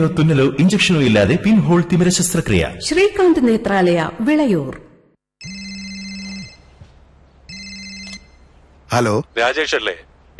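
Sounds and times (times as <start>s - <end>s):
speech: 0.0s - 4.8s, 8.9s - 10.3s
telephone ringing with an incoming call: 5.4s - 6.8s, 7.5s - 8.5s.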